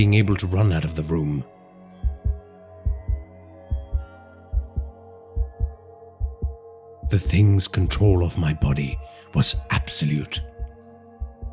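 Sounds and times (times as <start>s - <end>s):
speech: 0.0s - 1.6s, 7.1s - 10.5s
deep pounding heartbeat: 2.0s - 7.4s, 10.4s - 11.5s.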